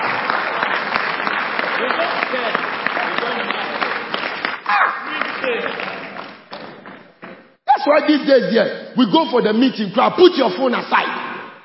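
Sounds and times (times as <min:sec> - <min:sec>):
audience applause at a religious meeting: 0:00.0 - 0:07.6
speech: 0:07.9 - 0:11.1.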